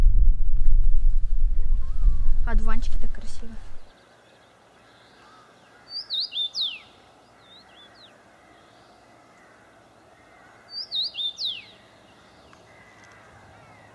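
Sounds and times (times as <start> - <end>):
soft outdoor hum: 0.0 - 13.9
small bird chirping: 1.6 - 8.2, 10.7 - 13.9
speech: 2.5 - 3.8.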